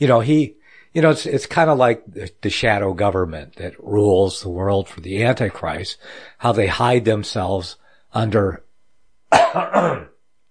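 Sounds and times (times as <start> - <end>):
speech: 0.0 - 8.6, 9.3 - 10.1
man's rough throat-clearing cough: 9.3 - 10.2.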